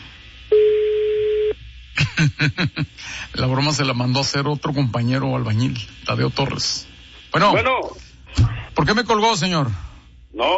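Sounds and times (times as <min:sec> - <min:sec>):
steady telephone tone as a call is placed: 0:00.5 - 0:01.6
speech: 0:02.2 - 0:07.9, 0:08.8 - 0:10.5.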